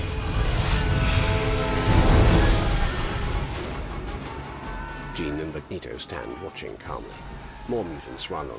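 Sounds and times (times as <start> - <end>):
jet aircraft descending and landing: 0.0 - 4.6
speech: 5.2 - 8.5.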